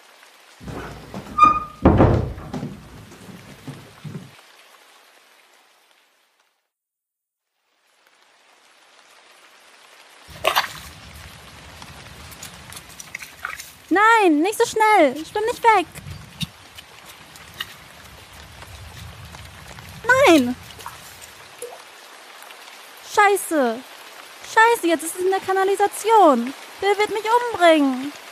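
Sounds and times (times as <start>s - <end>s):
rain falling outdoors: 0.0s - 6.7s, 7.4s - 28.3s
heavy thuds and knocks: 0.6s - 4.4s
sharp splash: 10.2s - 13.9s, 15.1s - 21.9s
speech: 14.0s - 16.0s, 20.3s - 20.6s, 23.3s - 23.9s, 24.7s - 28.2s.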